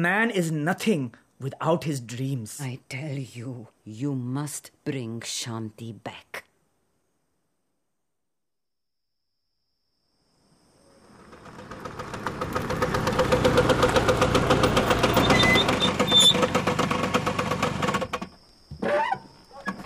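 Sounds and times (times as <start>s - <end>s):
speech: 0.0s - 6.5s
motorbike engine running: 11.1s - 18.2s.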